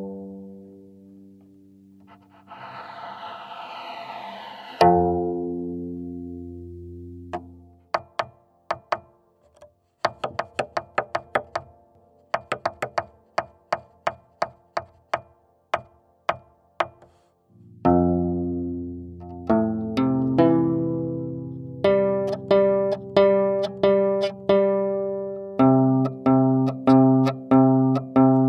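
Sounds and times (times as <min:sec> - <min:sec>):
kora rubbed, pinched and tapped: 0:04.8 - 0:11.8, 0:15.8 - 0:28.4.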